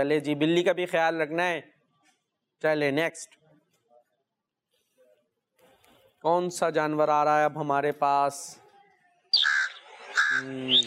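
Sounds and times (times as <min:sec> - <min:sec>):
speech: 0:00.0 - 0:01.7, 0:02.6 - 0:03.4, 0:06.2 - 0:08.6, 0:10.4 - 0:10.8
crow cawing: 0:09.4 - 0:10.8.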